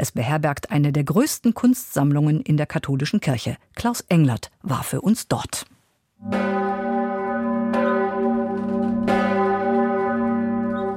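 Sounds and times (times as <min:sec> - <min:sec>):
speech: 0:00.0 - 0:07.0
church bells of the Benediktuskirche ringing over the Domberg in Freising: 0:06.2 - 0:10.9.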